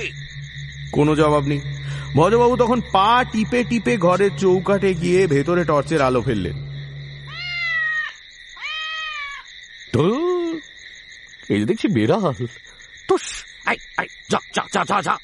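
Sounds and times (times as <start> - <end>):
speech: 0.9 - 6.6, 10.0 - 10.2, 11.5 - 15.2
cat meowing with drawn-out tonal cries: 7.3 - 9.5.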